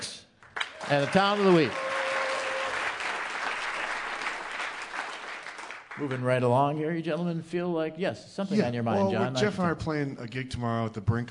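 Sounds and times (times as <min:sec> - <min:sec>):
studio audience applause: 0:00.5 - 0:06.5
speech: 0:00.9 - 0:01.8, 0:06.0 - 0:11.2.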